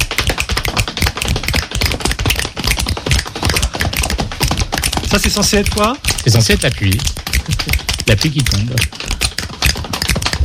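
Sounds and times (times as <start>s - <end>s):
several people slapping hands on the skin of their thighs: 0.0s - 10.4s
speech: 5.1s - 9.1s.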